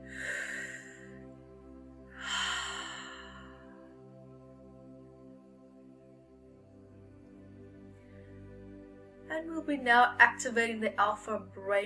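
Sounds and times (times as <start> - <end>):
slow deep breath in and out: 0.0 - 4.2
soft sustained musical drone: 0.0 - 11.8
speech: 9.3 - 11.8.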